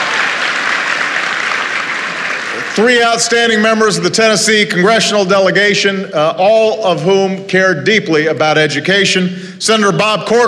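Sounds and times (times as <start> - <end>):
audience applause at a formal event: 0.0 - 3.2
speech: 2.8 - 10.4.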